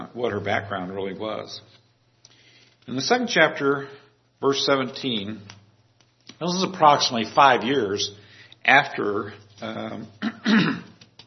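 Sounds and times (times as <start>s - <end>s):
speech: 0.1s - 1.8s, 2.9s - 5.6s, 6.4s - 10.9s
person clearing throat: 10.0s - 11.0s.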